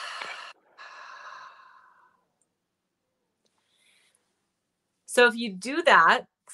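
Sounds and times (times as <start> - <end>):
slow deep exhale after a breath hold in 4-7-8 breathing: 0.0 - 2.3
speech: 5.2 - 6.5.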